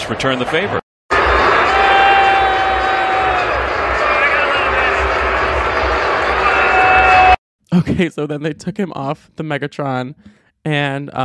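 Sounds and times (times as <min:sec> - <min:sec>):
speech: 0:00.1 - 0:00.8, 0:07.7 - 0:11.2
large stadium crowd booing: 0:01.1 - 0:07.4.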